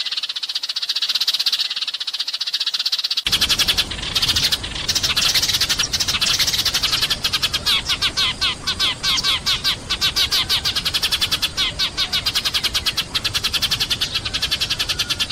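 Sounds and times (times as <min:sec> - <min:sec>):
background hiss: 0:00.0 - 0:15.2
Eurasian tree sparrow chirping: 0:02.4 - 0:15.2.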